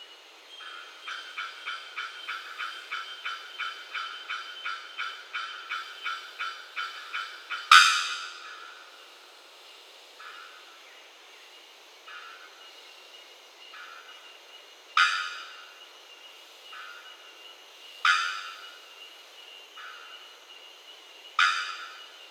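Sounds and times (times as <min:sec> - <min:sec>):
bellbird song: 0:00.4 - 0:08.9, 0:10.2 - 0:11.0, 0:12.1 - 0:12.9, 0:13.6 - 0:22.2.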